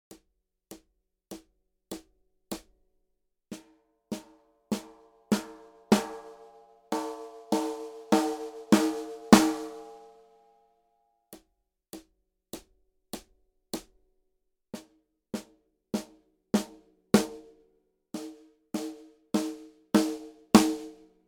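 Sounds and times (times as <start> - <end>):
snare drum played with birch rutes: 3.5 - 10.1, 14.8 - 17.4, 18.2 - 21.0.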